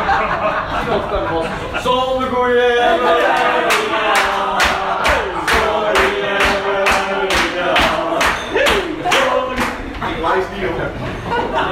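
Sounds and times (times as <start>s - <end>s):
laughter: 0.0s - 11.6s
speech: 0.2s - 3.6s
many voices chanting and cheering loudly: 2.6s - 10.2s
audience clapping in a steady rhythmic beat: 3.2s - 10.3s.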